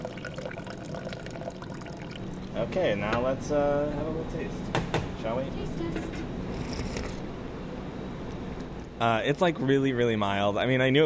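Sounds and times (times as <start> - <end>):
cold water pouring into a pot of simmered coffee and egg: 0.0 - 2.6
speech: 2.6 - 6.4, 9.0 - 11.0.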